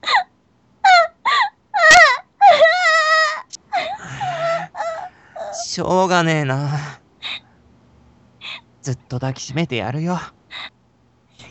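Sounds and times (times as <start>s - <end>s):
person crying on demand, wailing and whimpering: 0.8s - 5.6s
speech: 5.8s - 7.0s, 8.8s - 10.7s.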